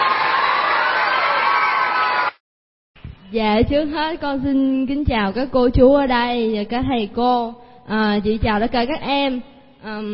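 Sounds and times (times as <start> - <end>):
children's excited shouts: 0.0 - 2.4
crowd of children clapping and cheering: 0.0 - 2.4
speech: 3.3 - 10.1.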